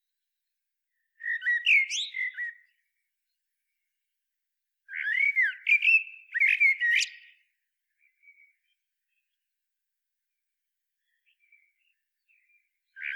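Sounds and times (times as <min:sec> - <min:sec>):
common blackbird Turdus merula singing fluted warbled phrases: 0:01.2 - 0:02.8, 0:04.9 - 0:07.4, 0:11.0 - 0:13.1.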